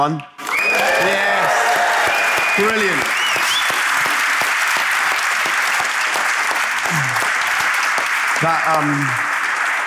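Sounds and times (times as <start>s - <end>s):
speech: 0.0s - 0.3s, 2.6s - 3.2s, 6.9s - 7.2s, 8.4s - 9.3s
large audience clapping: 0.0s - 9.8s
large audience cheering with scattered whoops: 0.4s - 4.2s.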